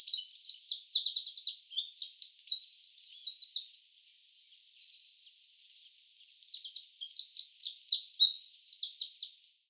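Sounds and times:
Eurasian wren Troglodytes troglodytes singing: 0:00.0 - 0:03.9, 0:06.5 - 0:09.4.

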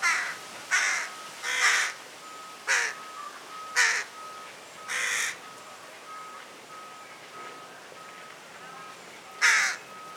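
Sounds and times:
carrion crow Corvus corone hoarse caw: 0:00.0 - 0:02.0, 0:02.7 - 0:04.2, 0:04.9 - 0:05.4, 0:09.4 - 0:09.9
faint steady tone: 0:01.0 - 0:10.1.

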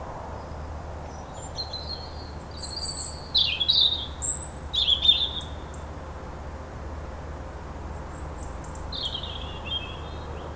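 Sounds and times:
European robin Erithacus rubecula singing: 0:01.1 - 0:05.9, 0:07.9 - 0:10.5.

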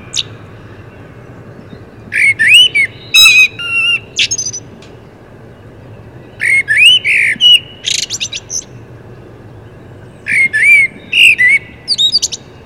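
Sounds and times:
common blackbird Turdus merula squeaky chattering: 0:02.1 - 0:04.7, 0:06.4 - 0:08.7, 0:10.2 - 0:12.5.

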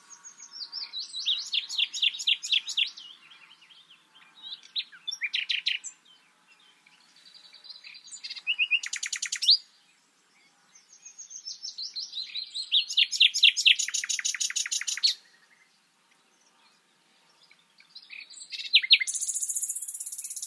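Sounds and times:
Common nightingale Luscinia megarhynchos song: 0:00.0 - 0:20.4.

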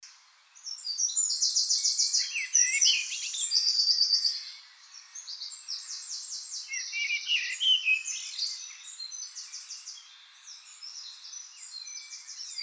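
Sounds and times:
Eurasian wren song: 0:00.5 - 0:12.6.

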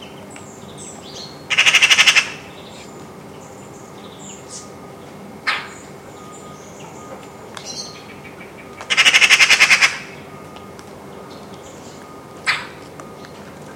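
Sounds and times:
Eurasian magpie harsh chattering rattle: 0:01.5 - 0:02.6, 0:07.6 - 0:10.2.

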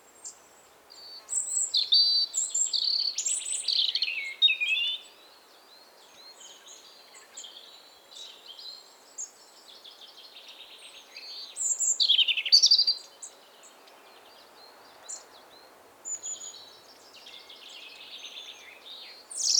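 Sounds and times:
European robin Erithacus rubecula singing: 0:01.0 - 0:05.1, 0:10.6 - 0:13.1, 0:16.1 - 0:19.5.

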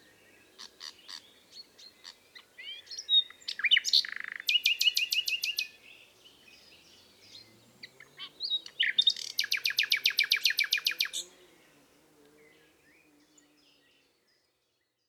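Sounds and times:
common nightingale Luscinia megarhynchos song of chirps and whistles: 0:00.6 - 0:05.8, 0:06.4 - 0:11.3.

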